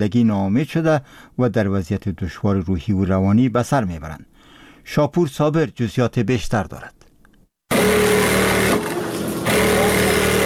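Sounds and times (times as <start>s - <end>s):
speech: 0.0s - 7.0s
electric sewing machines whirring: 7.7s - 10.4s.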